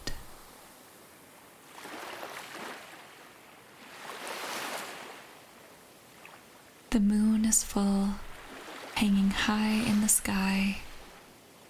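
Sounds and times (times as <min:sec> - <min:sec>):
steady hiss: 0:00.0 - 0:01.8, 0:05.4 - 0:11.6
gentle waves lapping at the shore: 0:00.0 - 0:06.9, 0:07.5 - 0:11.6
speech: 0:07.0 - 0:08.3, 0:09.0 - 0:10.8.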